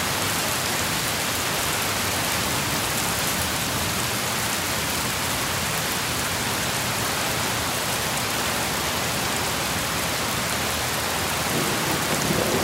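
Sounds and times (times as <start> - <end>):
heavy rain on a roof: 0.0 - 12.6
faint low rumble of thunder: 11.4 - 12.6.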